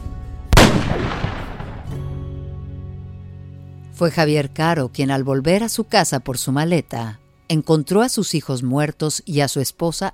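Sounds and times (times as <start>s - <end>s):
single loud gunshot: 0.6s - 2.2s
speech: 4.0s - 10.1s.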